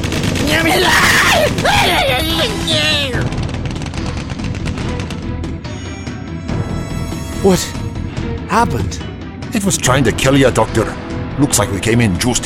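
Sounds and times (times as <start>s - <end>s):
gunfire volley: 0.0s - 5.6s
speech: 7.4s - 7.8s, 8.5s - 12.4s.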